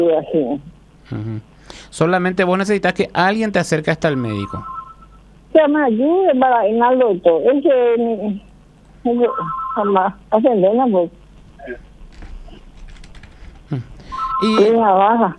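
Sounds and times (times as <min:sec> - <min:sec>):
speech: 0:00.0 - 0:04.7, 0:05.5 - 0:11.9, 0:13.7 - 0:15.3
telephone ringing with electronic warbling tones: 0:04.1 - 0:05.2, 0:09.2 - 0:10.2, 0:14.0 - 0:14.9.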